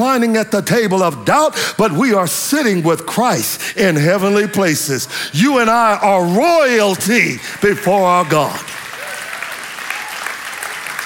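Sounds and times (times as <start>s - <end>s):
speech: 0.0s - 8.7s
church congregation clapping during a sermon: 6.8s - 11.0s.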